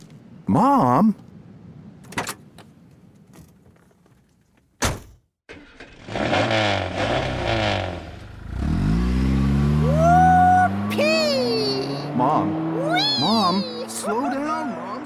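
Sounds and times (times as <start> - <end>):
speech: 0.5 - 1.3
sports car engine revving as it accelerates: 5.5 - 15.0.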